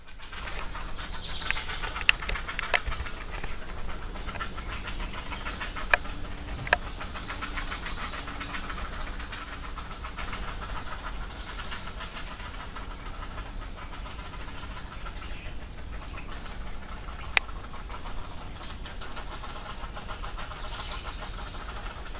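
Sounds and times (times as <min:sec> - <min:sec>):
herons squawking: 0:00.0 - 0:22.1
sharp clicks: 0:00.4 - 0:07.0.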